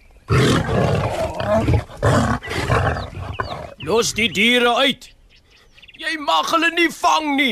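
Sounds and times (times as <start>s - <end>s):
lion roaring loudly with a growling edge: 0.3s - 3.8s
speech: 3.9s - 5.2s, 6.1s - 7.4s.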